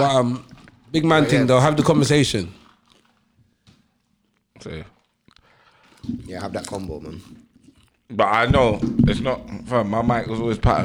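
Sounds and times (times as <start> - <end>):
speech: 0.0 - 2.6, 4.6 - 4.9, 6.0 - 7.4, 8.1 - 10.8
person chewing crunchy food: 2.6 - 3.2, 5.1 - 10.8.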